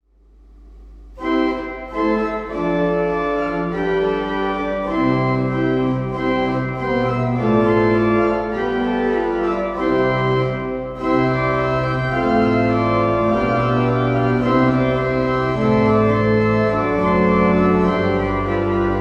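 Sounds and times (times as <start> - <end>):
pipe organ playing flautado octava stop: 0.9 - 18.9.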